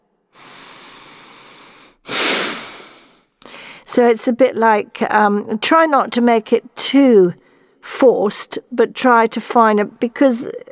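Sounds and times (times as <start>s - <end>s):
forceful nasal sniffing in a breathing exercise: 0.4s - 3.2s
speech: 4.0s - 10.7s.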